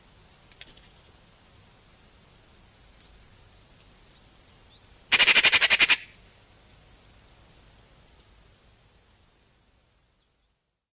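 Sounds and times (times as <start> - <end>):
Eurasian magpie Pica pica rattling call: 5.1 - 6.2.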